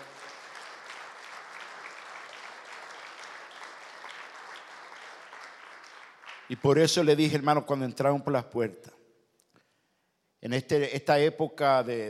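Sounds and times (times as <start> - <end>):
church audience applauding loudly: 0.0 - 6.9
speech: 6.5 - 9.0, 10.5 - 12.0.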